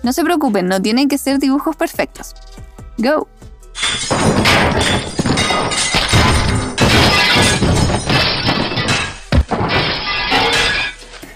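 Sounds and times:
speech: 0.0s - 6.0s
glass shattering from trash dumped onto the street: 3.8s - 11.1s
trash clattering and crashing as it is dumped onto the street: 3.8s - 11.3s.

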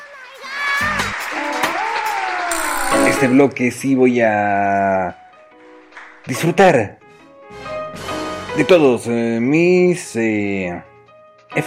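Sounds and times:
canned applause and cheering sound effect: 0.0s - 3.6s
people shouting: 0.4s - 3.4s
speech: 3.2s - 5.2s, 6.3s - 7.0s, 8.6s - 10.9s.

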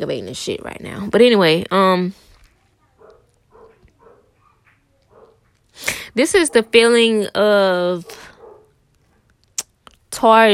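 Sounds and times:
speech: 0.0s - 2.2s, 5.8s - 8.2s, 10.1s - 10.5s
neighbor's dogs barking: 2.6s - 5.7s, 6.3s - 7.2s, 8.0s - 9.4s.

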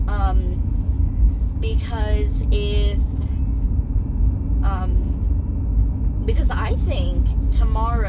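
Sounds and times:
car driving on the road: 0.0s - 8.0s
speech: 1.6s - 3.3s, 6.3s - 8.0s.

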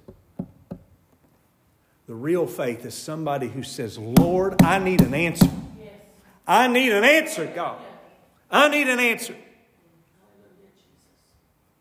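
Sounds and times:
soft knocking on a door: 0.0s - 0.9s, 4.2s - 5.8s
speech: 2.1s - 5.7s, 6.5s - 7.9s, 8.5s - 9.4s.

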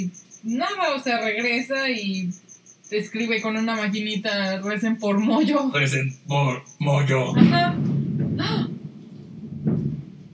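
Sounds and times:
speech: 0.0s - 8.7s
low rumble of thunder: 5.9s - 10.3s.

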